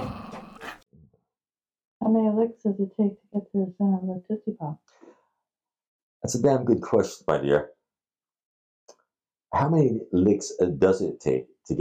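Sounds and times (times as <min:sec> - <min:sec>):
dog barking and growling: 0:00.0 - 0:00.8
speech: 0:02.1 - 0:05.2, 0:06.2 - 0:07.8, 0:09.5 - 0:11.7.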